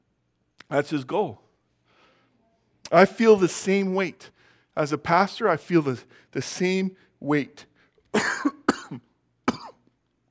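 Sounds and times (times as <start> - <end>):
speech: 0.7 - 1.4, 2.9 - 9.1
pastor coughing during a sermon: 8.2 - 9.8.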